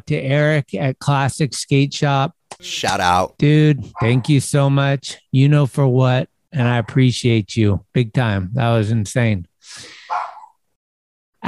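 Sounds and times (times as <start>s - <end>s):
speech: 0.1s - 10.2s
dog barking: 10.1s - 10.6s.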